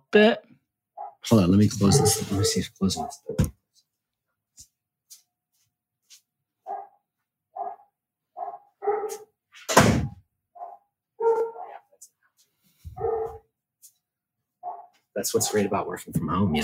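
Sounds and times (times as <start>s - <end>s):
speech: 0.1s - 0.4s, 1.2s - 3.6s, 15.2s - 16.6s
several dogs barking: 1.0s - 3.4s, 6.6s - 7.0s, 7.6s - 9.3s, 10.6s - 11.9s, 13.0s - 13.4s, 14.6s - 16.6s
loud thump: 9.7s - 10.2s.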